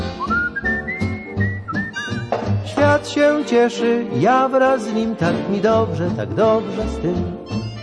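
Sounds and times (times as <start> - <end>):
cheerful whistled melody from a Polish song: 0.0 - 2.9
speech: 3.0 - 7.4.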